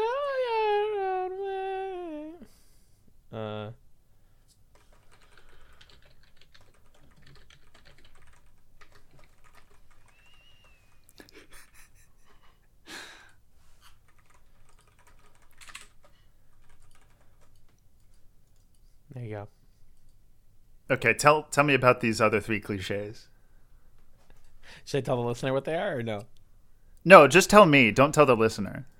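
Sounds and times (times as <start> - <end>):
low noise: 0.0 - 28.9
faint keyboard typing as someone writes something down: 4.7 - 11.8, 13.9 - 18.9
speech: 19.2 - 19.6, 20.9 - 23.3, 24.8 - 26.4, 27.0 - 28.9.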